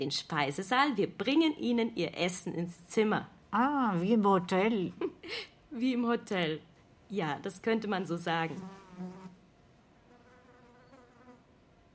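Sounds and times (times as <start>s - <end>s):
speech: 0.0s - 9.2s
faint noise: 0.0s - 11.9s
fly buzzing around a room: 8.5s - 9.4s, 10.0s - 11.9s.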